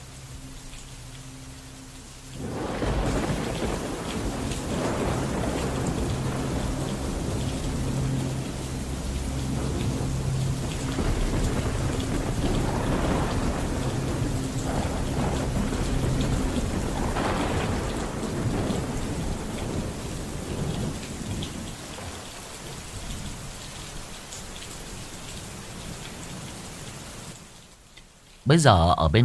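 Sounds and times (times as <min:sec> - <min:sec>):
heavy rain pouring: 0:00.0 - 0:29.2
rolling thunder: 0:02.4 - 0:23.6
speech: 0:28.5 - 0:29.2.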